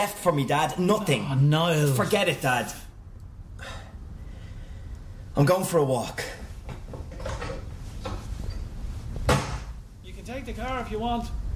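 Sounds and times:
speech: 0.0s - 2.8s, 5.4s - 6.4s, 10.3s - 11.4s
door slamming shut: 9.3s - 9.8s.

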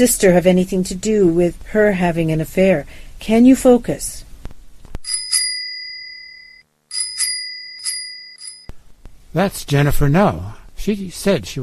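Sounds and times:
speech: 0.0s - 4.2s, 9.3s - 11.6s
bicycle bell ringing: 5.0s - 8.7s.

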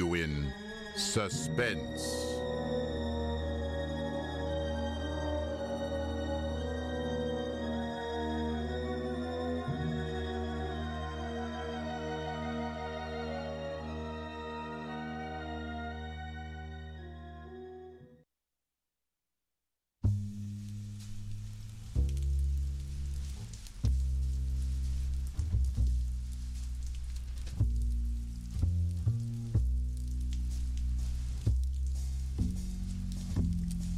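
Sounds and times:
sustained musical chord: 0.0s - 18.0s
speech: 1.0s - 2.4s
heavy rain pouring: 20.4s - 33.9s.

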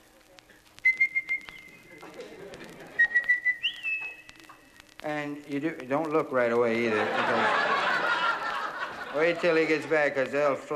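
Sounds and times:
falconer's return whistle: 0.8s - 1.8s, 3.0s - 4.4s
laughter: 1.8s - 3.3s, 6.7s - 10.7s
speech: 5.0s - 7.9s, 9.2s - 10.7s.

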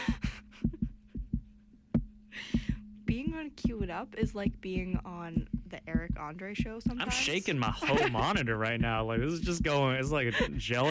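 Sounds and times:
heavy low heartbeat thumping: 0.0s - 10.8s
speech: 3.1s - 10.8s
laughter: 7.1s - 8.8s, 9.5s - 10.8s.

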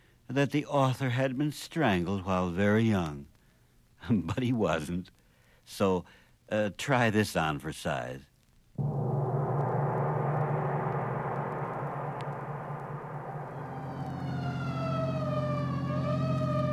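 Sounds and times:
speech: 0.3s - 3.3s, 4.0s - 8.9s
constant engine rumble: 8.8s - 16.7s
emergency vehicle siren wailing: 13.2s - 16.7s.

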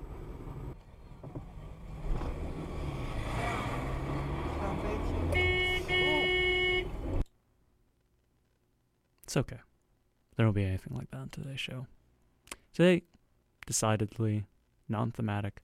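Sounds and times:
steady rumble of passing traffic: 0.0s - 7.2s
car horn honking in traffic: 5.2s - 7.2s
speech: 9.3s - 9.7s, 10.4s - 12.0s, 12.7s - 15.6s.

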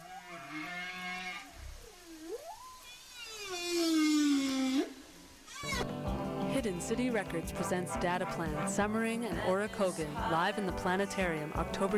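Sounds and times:
whale calls with long harmonic tones: 0.0s - 5.9s
speech: 6.6s - 11.9s.

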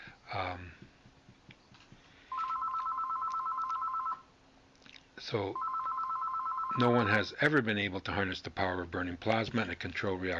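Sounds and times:
telephone ringing with an electronic trill: 2.3s - 4.3s, 5.6s - 7.2s
speech: 5.3s - 5.7s, 6.8s - 10.3s.

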